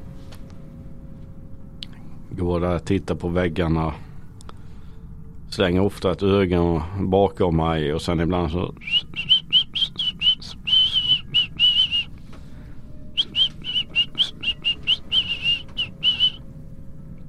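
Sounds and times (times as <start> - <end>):
low rumble: 0.0 - 17.2
speech: 2.3 - 4.1, 5.6 - 9.3
person whistling short high notes in an echoey space: 8.8 - 16.4.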